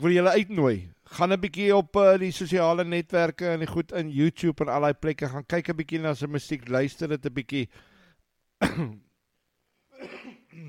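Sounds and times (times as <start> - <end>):
speech: 0.0 - 7.9, 8.6 - 9.1
throat clearing: 8.6 - 9.1, 9.9 - 10.6.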